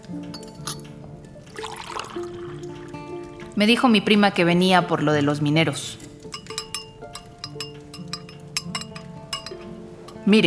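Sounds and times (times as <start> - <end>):
coffee pouring into cups: 0.0 - 3.6, 6.1 - 10.2
speech: 0.1 - 0.4, 3.6 - 6.0, 10.3 - 10.4.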